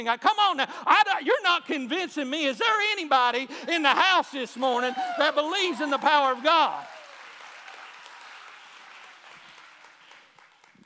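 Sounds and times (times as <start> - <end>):
speech: 0.0 - 6.9
audience clapping and cheering: 4.0 - 10.8.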